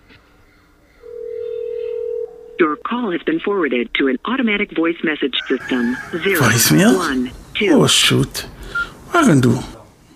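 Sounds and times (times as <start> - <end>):
telephone keypad tones as a number is dialed: 1.1 - 2.6
steady sustained telephone line tone: 1.1 - 2.9
speech: 2.9 - 8.5, 9.1 - 9.7.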